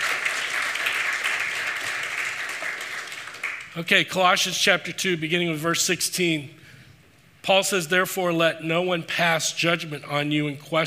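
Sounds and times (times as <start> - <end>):
audience applause: 0.0 - 3.7
speech: 3.8 - 6.6, 7.4 - 10.8.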